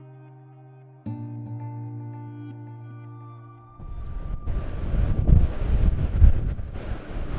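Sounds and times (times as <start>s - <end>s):
steady tonal hum: 0.0s - 7.3s
strong wind buffeting a microphone outdoors: 3.8s - 7.3s.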